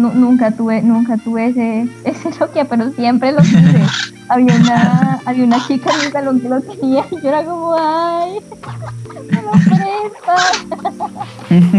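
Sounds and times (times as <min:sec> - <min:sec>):
speech: 0:00.0 - 0:11.7
pet parrot squawking and chattering: 0:03.4 - 0:11.5
laughter: 0:04.5 - 0:11.7.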